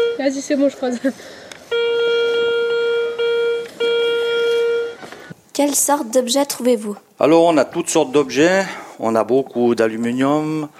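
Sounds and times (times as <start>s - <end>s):
metal detector beeping while sweeping over buried metal: 0.0s - 0.6s, 1.6s - 5.0s
speech: 0.2s - 1.5s, 5.6s - 10.7s.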